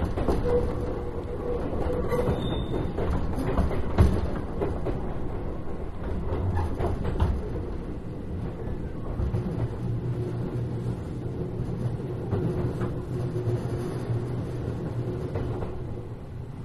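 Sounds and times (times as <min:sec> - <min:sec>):
train rumbling at a station: 0:00.0 - 0:16.6
high squeal of a train at a station: 0:02.0 - 0:02.9.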